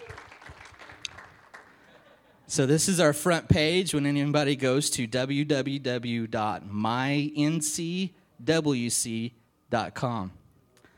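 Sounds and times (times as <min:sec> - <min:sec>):
church audience applauding: 0:00.0 - 0:02.0
speech: 0:02.5 - 0:10.4.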